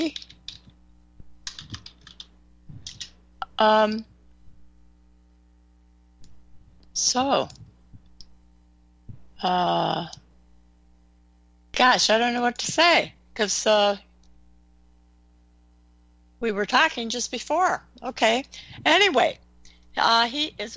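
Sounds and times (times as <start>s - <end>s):
typing on a computer keyboard: 0.0s - 0.7s, 1.5s - 3.1s
speech: 3.6s - 4.1s, 7.0s - 7.6s, 9.4s - 10.2s, 11.8s - 14.0s, 16.4s - 19.4s, 20.0s - 20.7s.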